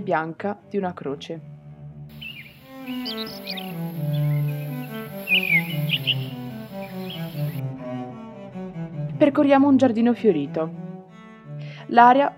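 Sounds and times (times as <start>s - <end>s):
speech: 0.0s - 1.5s, 2.9s - 4.2s, 5.3s - 8.2s, 9.2s - 10.9s, 11.9s - 12.3s
several birds chirping and tweeting: 2.1s - 7.6s.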